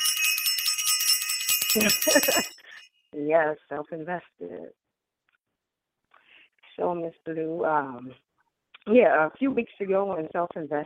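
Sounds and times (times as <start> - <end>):
bright bell ringing rapidly: 0.0 - 2.9
speech: 1.7 - 4.8, 6.8 - 8.2, 8.8 - 10.8.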